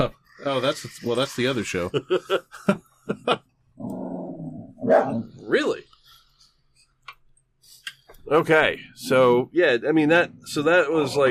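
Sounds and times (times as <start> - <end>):
speech: 0.0 - 3.5, 4.9 - 5.8, 8.3 - 11.2
laughter: 1.3 - 3.4
dog barking while playing: 4.8 - 5.2.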